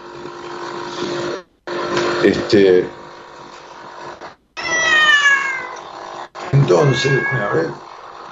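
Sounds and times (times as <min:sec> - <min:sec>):
speech: 0:02.2 - 0:03.0, 0:06.7 - 0:07.9
cat meowing: 0:04.6 - 0:05.9, 0:06.5 - 0:07.8.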